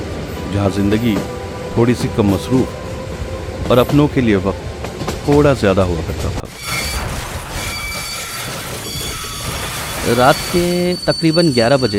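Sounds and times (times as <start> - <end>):
train rumbling while slowing down and stopping at a small village: 0.0 - 11.9
speech: 0.5 - 2.8, 3.6 - 4.6, 5.3 - 6.4, 10.1 - 11.9
high metallic squeals of braking train wheels: 6.5 - 11.9.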